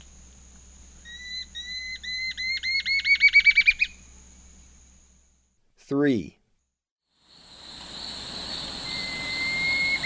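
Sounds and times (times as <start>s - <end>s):
Curve-billed Scythebill song in the eastern lowlands of South America: 1.0s - 4.0s, 8.4s - 10.0s
speech: 5.9s - 6.4s.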